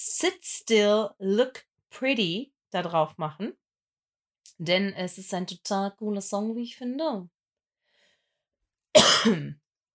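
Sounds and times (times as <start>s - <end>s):
speech: 0.2s - 3.6s, 4.6s - 7.4s, 9.0s - 9.6s
forceful cough with throaty rasp: 9.0s - 9.5s.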